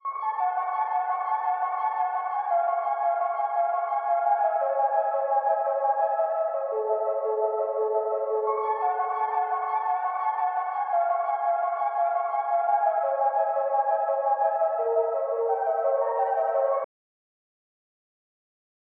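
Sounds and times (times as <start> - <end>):
114 BPM F sharp minor arpeggio loop: 0.0 - 16.8.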